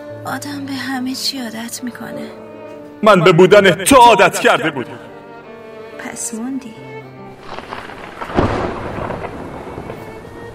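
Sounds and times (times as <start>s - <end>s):
speech: 0.2s - 5.1s, 6.1s - 7.0s
steady hiss of falling rain: 7.3s - 10.5s
deep thunderclap rolling into a low rumble: 7.4s - 10.5s.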